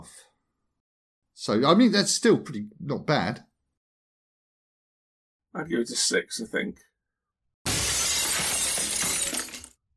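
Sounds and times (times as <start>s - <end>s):
speech: 1.4s - 3.5s, 5.5s - 6.9s
glass shattering: 7.7s - 9.8s.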